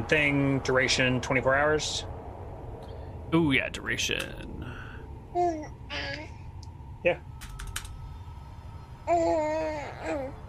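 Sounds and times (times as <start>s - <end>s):
speech: 0.0s - 2.2s, 3.3s - 4.6s, 5.3s - 6.2s, 7.0s - 7.4s, 9.1s - 10.4s
low hum: 0.0s - 10.4s
baby babbling and cooing: 5.4s - 6.4s, 9.1s - 10.4s.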